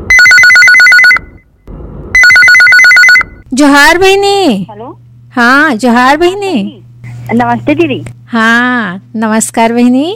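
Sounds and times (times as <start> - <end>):
loud electronic phone ringtone for an incoming call to a radio phone-in programme: 0.1 - 1.4, 2.2 - 3.4
speech: 3.6 - 10.1.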